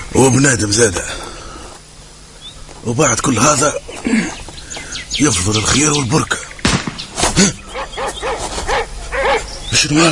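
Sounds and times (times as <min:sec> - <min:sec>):
speech: 0:00.1 - 0:01.3, 0:02.8 - 0:04.4, 0:05.0 - 0:06.5, 0:07.4 - 0:07.6, 0:09.7 - 0:10.1
dogs barking and yipping: 0:07.6 - 0:09.6.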